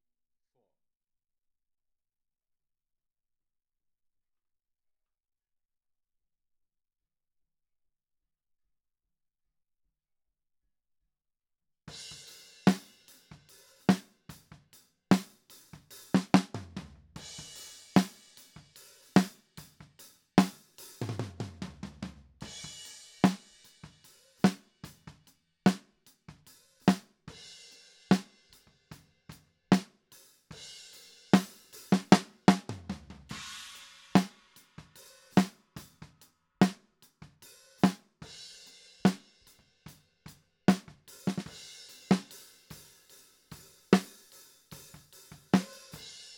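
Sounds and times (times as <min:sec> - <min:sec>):
snare drum top: 0:12.6 - 0:14.2, 0:15.1 - 0:27.1, 0:31.4 - 0:38.1, 0:40.7 - 0:42.9, 0:43.9 - 0:46.3.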